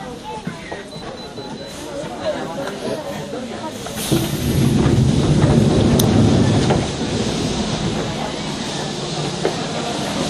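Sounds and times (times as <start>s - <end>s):
limited express train doors sliding open with pneumatic hiss at a station: 0.8s - 10.2s
steady rumbling train carriage noise: 4.0s - 9.6s.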